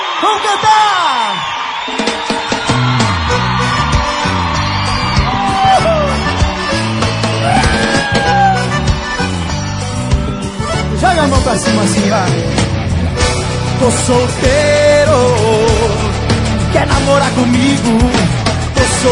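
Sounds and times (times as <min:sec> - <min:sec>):
crowd shouting and whooping: 0:00.0 - 0:11.2
pounding live music: 0:00.0 - 0:19.0
speech: 0:00.2 - 0:01.0, 0:11.2 - 0:12.8, 0:13.8 - 0:15.6, 0:16.7 - 0:19.0.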